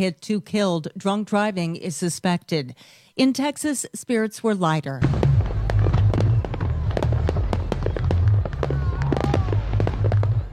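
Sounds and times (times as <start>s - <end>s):
speech: 0.0s - 5.4s
faint crowd noise: 5.0s - 10.5s
fireworks bursting over a city: 5.0s - 10.5s
steady low rumble: 5.0s - 10.5s.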